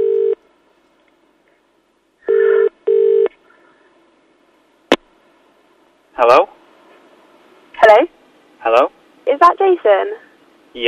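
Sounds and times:
telephone ringing in short electronic tone bursts: 0.0 - 0.4, 2.3 - 3.3
speech: 6.2 - 6.6, 7.9 - 10.8.

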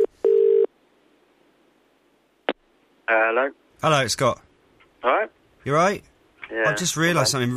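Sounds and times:
telephone line ringing tone on an outgoing call: 0.0 - 0.7
speech: 3.1 - 7.5.

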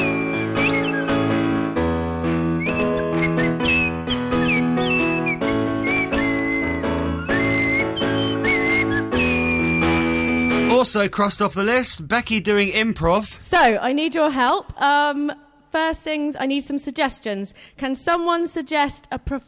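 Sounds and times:
swanee whistle playing a swooping melody: 0.0 - 10.7
full loud musical backing: 0.0 - 13.2
speech: 11.0 - 19.4.

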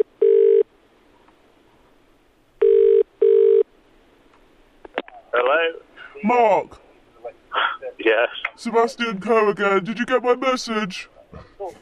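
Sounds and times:
phone line ringback tone heard by the caller: 0.0 - 0.7, 2.6 - 3.6
speech: 6.2 - 6.9, 8.0 - 11.8.

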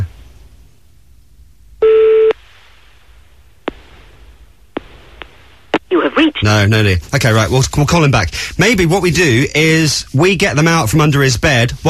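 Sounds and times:
foreign telephone ringing tone electronic beep: 1.8 - 2.3
speech: 5.9 - 11.8.

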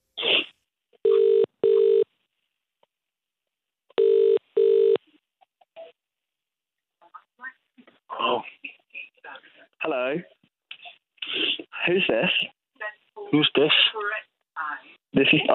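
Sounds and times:
phone line ringback tone with double rings: 1.0 - 2.1, 4.0 - 5.0
speech: 9.9 - 10.4, 11.9 - 12.6, 13.3 - 14.0, 15.1 - 15.5.

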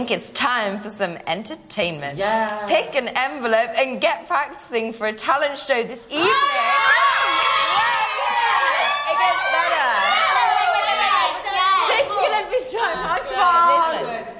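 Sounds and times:
speech: 0.0 - 7.0
crowd of excited children shouting and cheering: 6.2 - 14.1.

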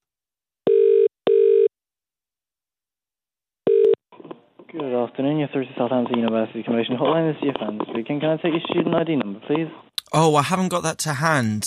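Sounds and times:
telephone ringback tone on an outgoing call: 0.7 - 1.7, 3.7 - 4.0
speech: 4.7 - 11.6.

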